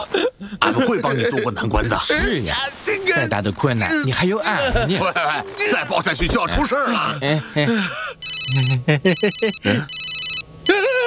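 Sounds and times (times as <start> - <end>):
speech: 0.4 - 10.0
laughter: 4.3 - 9.9
mobile phone ringing with a bright melodic ringtone: 8.2 - 10.7.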